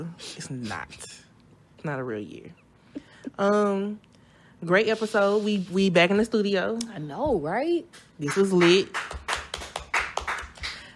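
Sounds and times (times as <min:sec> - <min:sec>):
speech: 0:00.0 - 0:01.2, 0:01.8 - 0:09.2
sharp hand clapping: 0:07.9 - 0:10.9.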